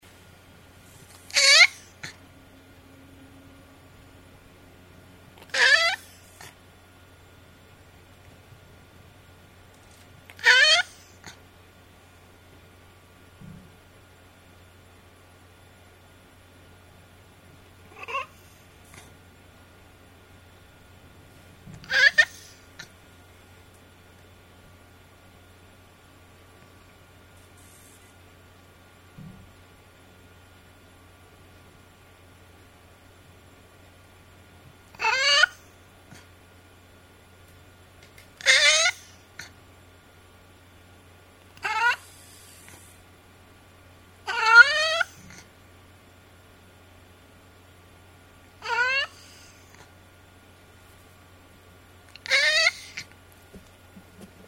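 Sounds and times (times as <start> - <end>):
cat: 1.1 - 2.2, 5.4 - 6.6, 9.9 - 11.4, 17.9 - 19.1, 21.8 - 22.9, 34.9 - 36.3, 38.4 - 39.6, 41.6 - 42.9, 44.2 - 45.5, 48.6 - 49.9, 52.1 - 53.2.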